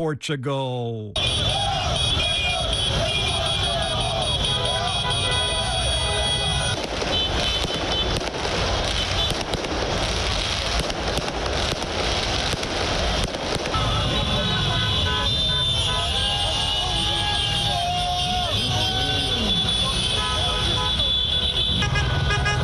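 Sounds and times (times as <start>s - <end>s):
speech: 0.0s - 2.4s
crowd noise: 0.0s - 9.2s, 13.7s - 22.6s
traffic noise: 1.1s - 22.6s
car horns honking in football fans' street celebration: 1.2s - 8.2s, 13.7s - 22.6s.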